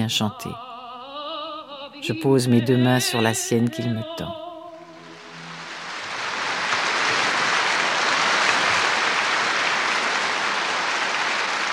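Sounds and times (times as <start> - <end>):
speech: 0.0 - 0.7, 2.0 - 4.4
sustained applause from a large concert audience: 5.0 - 11.7.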